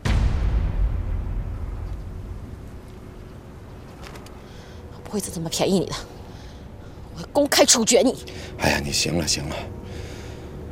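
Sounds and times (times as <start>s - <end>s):
gunshot-like blast: 0.0s - 2.6s
heavy low rumble: 0.0s - 5.2s
speech: 5.1s - 6.2s, 7.4s - 9.8s.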